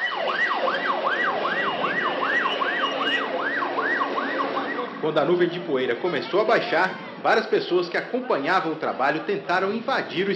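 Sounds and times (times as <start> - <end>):
ambulance siren yelping: 0.0 - 5.4
dull traffic rumble: 0.0 - 10.3
speech: 5.0 - 10.3.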